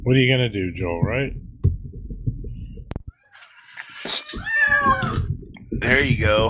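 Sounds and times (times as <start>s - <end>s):
speech: 0.1s - 1.4s, 5.8s - 6.4s
cat meowing: 3.2s - 5.4s.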